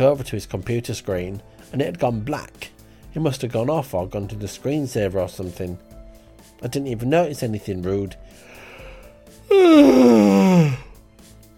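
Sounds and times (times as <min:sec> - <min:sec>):
speech: 0:00.0 - 0:05.9, 0:06.6 - 0:08.5, 0:09.5 - 0:10.8
person yawning: 0:09.5 - 0:10.9.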